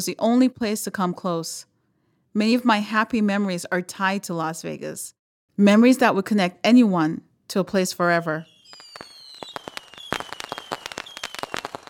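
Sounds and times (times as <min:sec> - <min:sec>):
speech: 0:00.0 - 0:01.7, 0:02.3 - 0:09.1
fireworks crackling and popping at a 4th of July fireworks show: 0:08.5 - 0:11.8.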